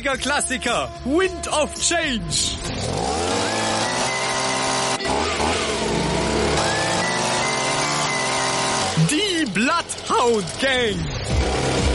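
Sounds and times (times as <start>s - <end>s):
speech: 0.0s - 3.2s, 9.8s - 11.7s
leaf blower engine running: 2.7s - 11.9s.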